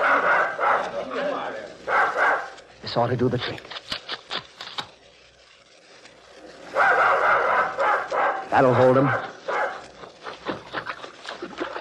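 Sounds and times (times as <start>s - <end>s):
several dogs barking: 0.0s - 1.1s, 1.8s - 2.6s, 6.6s - 10.6s
speech: 2.9s - 3.8s, 8.6s - 9.3s.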